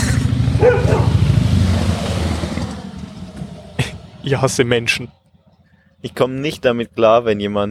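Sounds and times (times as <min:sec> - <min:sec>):
chopper motorcycle engine roaring past: 0:00.0 - 0:05.5
speech: 0:00.6 - 0:01.2, 0:04.2 - 0:05.2, 0:06.0 - 0:07.6.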